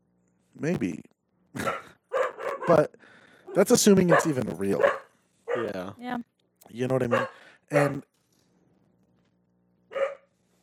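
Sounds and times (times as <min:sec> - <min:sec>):
low steady hum: 0:00.0 - 0:10.6
speech: 0:00.6 - 0:01.6, 0:02.7 - 0:05.0, 0:05.6 - 0:08.1
neighbours' dog barking outside: 0:01.6 - 0:02.9, 0:03.5 - 0:05.8, 0:07.0 - 0:08.0, 0:09.9 - 0:10.3.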